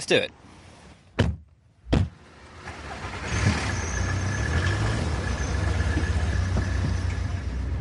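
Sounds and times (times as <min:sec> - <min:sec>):
sharp thumps: 0:01.2 - 0:02.2
car driving on a road heard from inside the vehicle: 0:01.8 - 0:07.7.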